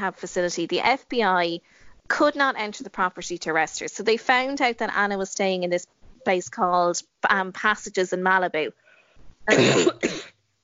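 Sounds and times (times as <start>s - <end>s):
speech: 0.0s - 8.8s, 9.5s - 10.2s
person coughing: 9.5s - 10.4s.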